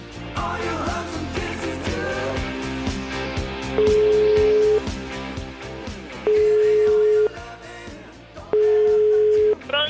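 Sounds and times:
busy music: 0.0 - 9.8
mobile phone ringing tone while dialing: 3.8 - 4.9, 6.3 - 7.4, 8.6 - 9.7.

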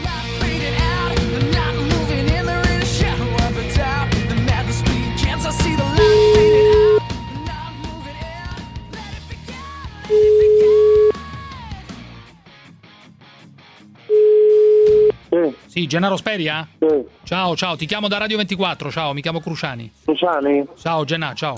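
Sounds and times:
busy music: 0.0 - 21.5
telephone ringback tone while connecting a call: 6.0 - 7.1, 10.1 - 11.2, 14.1 - 15.1
speech: 15.8 - 21.5.

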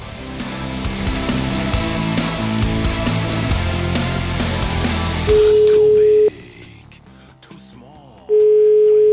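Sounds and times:
music: 0.0 - 9.1
outgoing call telephone ringback tone: 5.3 - 6.4, 8.3 - 9.1.

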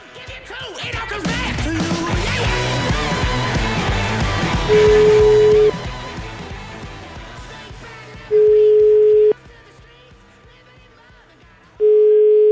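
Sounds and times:
music: 0.0 - 12.0
telephone ringback tone on an outgoing call: 4.7 - 5.8, 8.4 - 9.4, 11.8 - 12.4.

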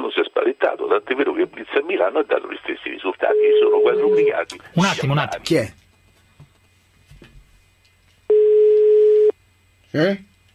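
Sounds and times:
speech: 0.7 - 5.8, 9.9 - 10.3
telephone ringing with single-pitched electronic tone: 3.2 - 4.4, 8.3 - 9.3.

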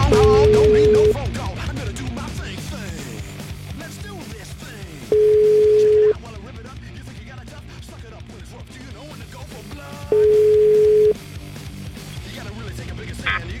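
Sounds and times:
telephone line tone beeps: 0.1 - 1.2, 5.2 - 6.2, 10.2 - 11.2
voices murmuring: 13.1 - 13.5.

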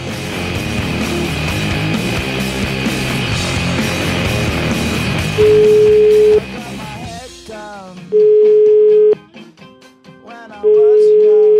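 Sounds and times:
busy music: 0.0 - 11.5
outgoing telephone call ringing tone beeps: 5.4 - 6.4, 8.1 - 9.2, 10.6 - 11.5.

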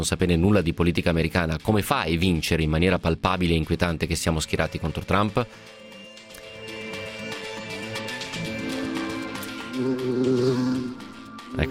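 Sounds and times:
speech: 0.0 - 5.8, 9.8 - 11.6
fly buzzing: 6.7 - 11.4.

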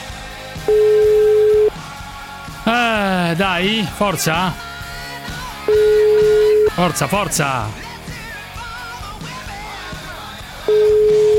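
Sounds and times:
telephone ringing tone down the line: 0.7 - 1.8, 5.7 - 7.1, 10.7 - 11.3
speech: 3.3 - 4.7, 6.8 - 7.8.

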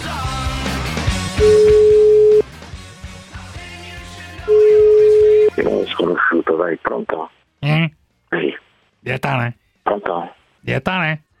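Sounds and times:
music: 0.0 - 11.3
telephone ringing tones on an outgoing call: 1.4 - 2.4, 4.5 - 5.7
speech: 6.5 - 11.3.

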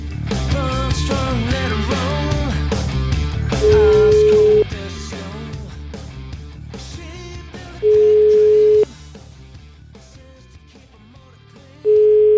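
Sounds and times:
music: 0.0 - 12.3
telephone ringback tone while an outgoing call connects: 3.6 - 4.7, 7.8 - 8.9, 11.9 - 12.3.

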